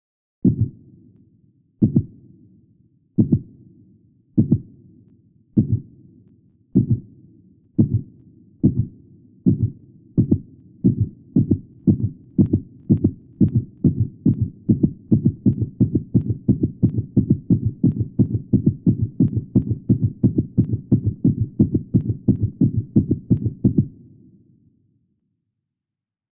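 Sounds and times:
low heartbeat speeding up under stress: 0.4 - 0.8, 1.8 - 2.2, 3.2 - 3.5, 4.4 - 4.8, 5.6 - 5.9, 6.8 - 7.1, 7.8 - 24.0.

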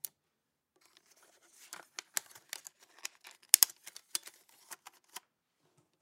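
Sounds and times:
35mm Aeroflex motion picture film camera de-threading and magazine removal: 0.9 - 5.2.

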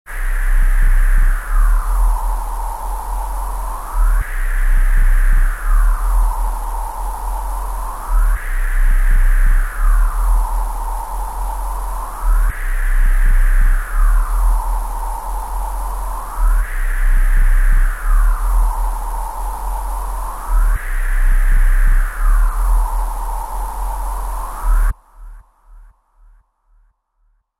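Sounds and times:
futuristic ambience inside an alien spacecraft: 0.1 - 25.8.

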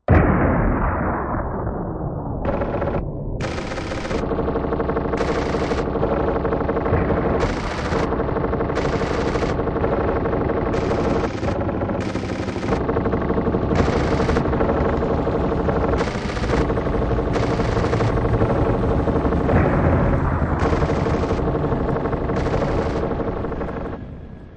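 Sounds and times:
bombs exploding: 0.1 - 3.5, 6.9 - 8.3, 13.7 - 24.5
battle explosions: 0.1 - 5.8, 6.8 - 24.5
machine guns firing from multiple positions: 2.4 - 24.5
war helicopters: 2.5 - 24.5.

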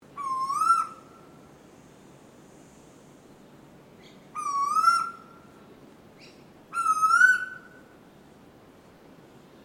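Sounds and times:
background hiss: 0.0 - 9.6
bird calls at Noosa: 4.0 - 5.3, 6.2 - 7.8.

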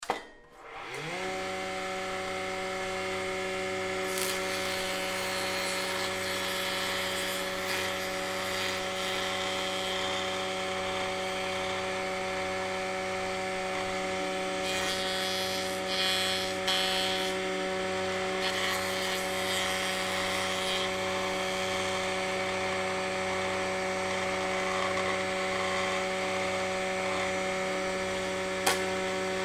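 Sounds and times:
industrial table grinder starting, running and shutting off: 0.6 - 29.4.

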